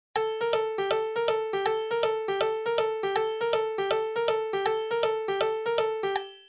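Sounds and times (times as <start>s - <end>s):
ondo swing rhythm music: 0.2s - 6.2s.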